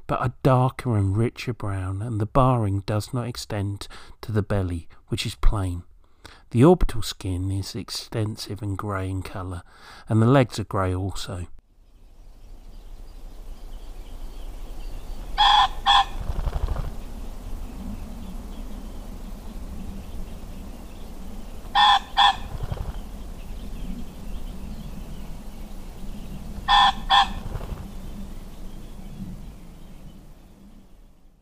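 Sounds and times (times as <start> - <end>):
speech: 0.1 - 11.6
male common pheasant harsh two-note crowing call: 14.6 - 17.1, 18.2 - 31.0
pheasant wing shaking: 15.4 - 24.3, 25.7 - 28.2.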